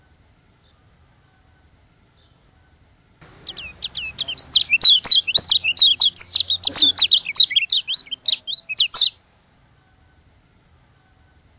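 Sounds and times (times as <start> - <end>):
white-eye twittering: 3.2 - 9.2.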